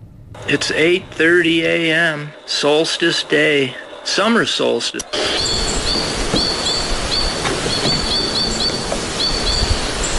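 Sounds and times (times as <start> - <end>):
speech: 0.4 - 5.7
broad outdoor hiss: 0.4 - 10.1
white-winged crossbill chattering in spruce trees: 5.1 - 10.1.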